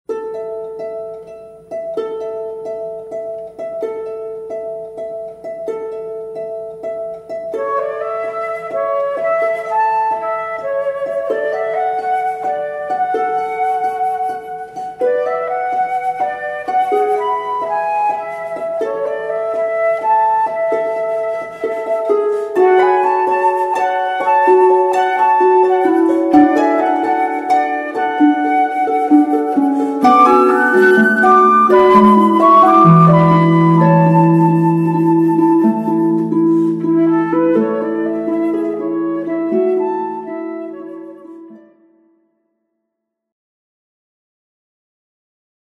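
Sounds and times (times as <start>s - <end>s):
harp: 0.1s - 42.0s
flute: 5.9s - 42.2s.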